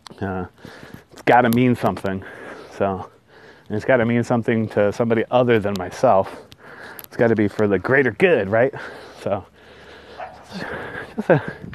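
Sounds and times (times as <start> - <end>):
steady noise: 0.0 - 11.7
speech: 0.2 - 9.5, 10.5 - 11.7
dogs barking and yipping as a runner passes: 10.1 - 10.6.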